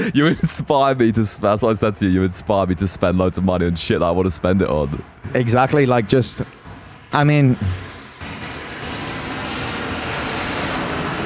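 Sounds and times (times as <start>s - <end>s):
laughter: 0.0s - 1.7s, 5.2s - 6.0s
speech: 0.0s - 7.9s
airplane roaring overhead: 0.0s - 11.2s.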